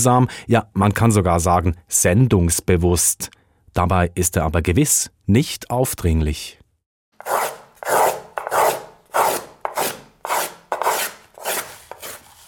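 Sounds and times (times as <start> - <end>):
speech: 0.0 - 6.6
small brass arching plane shaving wood: 7.2 - 12.4.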